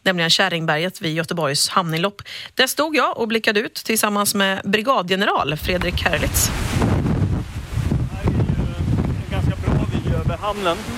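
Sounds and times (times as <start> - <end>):
speech: 0.0 - 6.8, 10.4 - 10.9
strong gusty wind buffeting the microphone on a harbor hilltop: 5.4 - 10.9.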